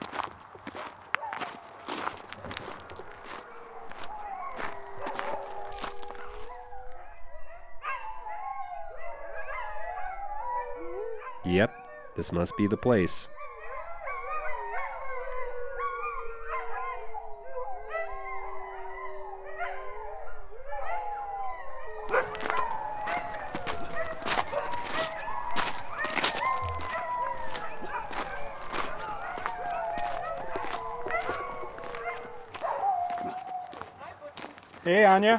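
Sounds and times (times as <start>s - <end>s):
footsteps crunching on a gravel footpath: 0.0s - 6.6s, 22.0s - 35.3s
chorus of kennel dogs howling near the Talkeetna Mountains: 0.1s - 34.1s
speech: 11.5s - 13.4s, 35.2s - 35.3s.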